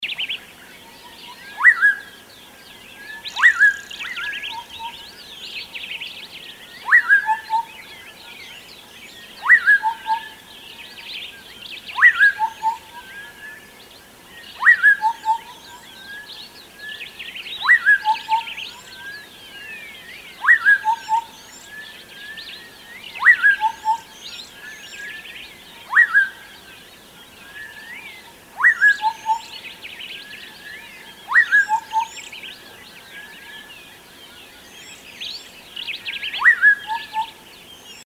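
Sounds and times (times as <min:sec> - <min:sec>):
various birds: 0:00.0 - 0:38.0.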